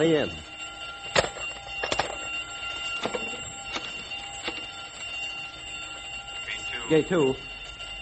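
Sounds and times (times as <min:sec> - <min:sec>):
speech: 0:00.0 - 0:00.5, 0:06.9 - 0:07.5
electric alarm ringing with a continuous bright tone: 0:00.0 - 0:08.0
sharp clanks and knocks: 0:01.0 - 0:02.4, 0:03.0 - 0:04.7.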